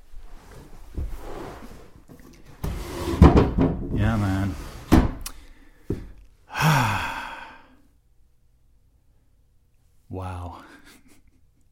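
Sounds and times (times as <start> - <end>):
clothes drawers opening and closing in a home: 0.5 - 5.2
laughter: 10.6 - 11.6.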